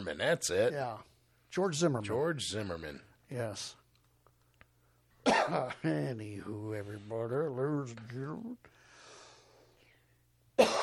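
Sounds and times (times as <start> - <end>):
speech: 0.1 - 3.8, 5.5 - 8.8
ill person coughing: 5.2 - 5.9, 10.6 - 10.8.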